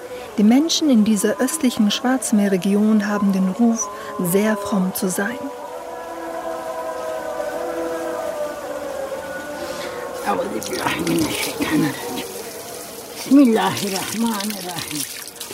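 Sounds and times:
sustained wailing tonal sound: 0:00.0 - 0:15.5
speech: 0:00.4 - 0:05.6, 0:10.4 - 0:12.0, 0:13.3 - 0:15.2
water running and splashing from an outdoor tap during ritual washing: 0:10.4 - 0:15.5.

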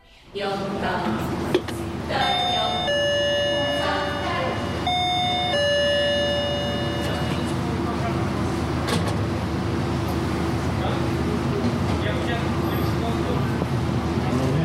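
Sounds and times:
speech: 0:00.3 - 0:02.4
faint street ambience: 0:00.4 - 0:14.6
two-tone doorbell chime at an apartment block door: 0:02.2 - 0:07.5.

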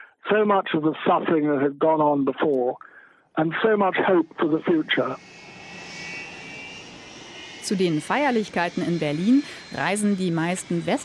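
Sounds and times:
speech: 0:00.3 - 0:05.4, 0:07.7 - 0:11.0
civil airplane engine drone with high whining tone during landing: 0:02.8 - 0:11.0.

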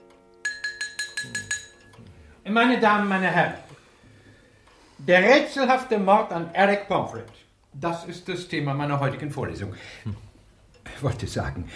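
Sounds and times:
teaspoon tapped against a cup: 0:00.4 - 0:01.9
speech: 0:02.5 - 0:03.6, 0:05.0 - 0:10.2, 0:11.0 - 0:11.7.

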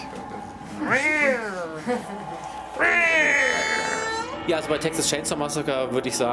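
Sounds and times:
speech: 0:01.8 - 0:02.9, 0:04.5 - 0:06.3
electronically amplified anguished cat yowls from a horror film soundtrack: 0:02.8 - 0:04.4.

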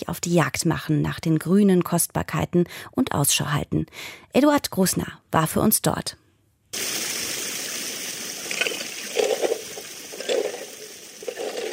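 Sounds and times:
speech: 0:00.1 - 0:07.0
brief gritty splashes: 0:06.8 - 0:11.7
stream water rushing over a perforated metal sheet in a valley stream: 0:06.8 - 0:11.7.

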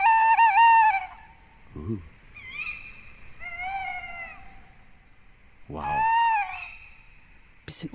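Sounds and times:
short low owl hoot: 0:00.0 - 0:04.8, 0:05.7 - 0:07.1
owl calling with quavering whistly cries: 0:00.0 - 0:07.4
speech: 0:01.9 - 0:02.1, 0:07.7 - 0:07.9.

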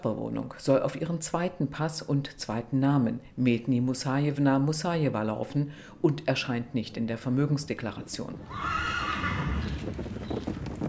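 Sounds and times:
speech: 0:00.0 - 0:10.0
racehorse whinnying: 0:08.4 - 0:10.0
racehorse hooves clip-clopping: 0:08.5 - 0:10.8.

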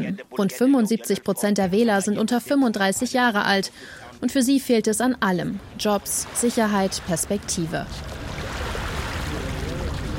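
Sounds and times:
speech: 0:00.0 - 0:08.2
surf and rushing water on the beach at a fishing village: 0:05.6 - 0:10.1.

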